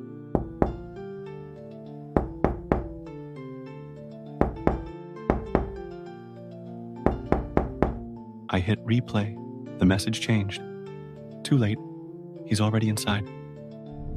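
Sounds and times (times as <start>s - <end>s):
heavy knocks on a front door: 0.4s - 0.9s, 2.2s - 3.0s, 4.4s - 5.8s, 7.1s - 8.1s
speech: 8.6s - 10.7s, 11.5s - 11.9s, 12.5s - 13.4s.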